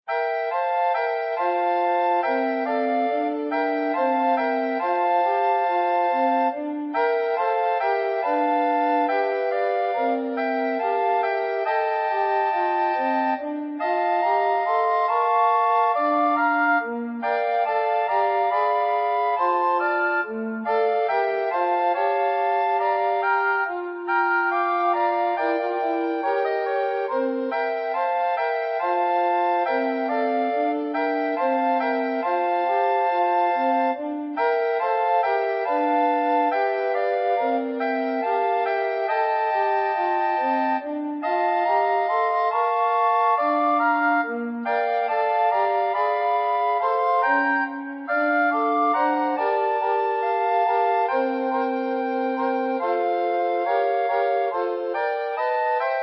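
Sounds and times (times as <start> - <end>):
SATB recorder quartet playing: 0.1 - 56.0.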